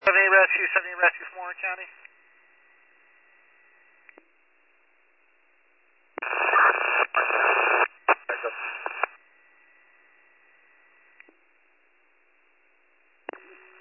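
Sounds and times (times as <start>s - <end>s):
garbled unreadable two-way radio transmission: 0.0s - 2.0s, 6.2s - 9.2s
speech: 0.1s - 2.1s
two-way radio squelch click: 6.2s - 9.2s.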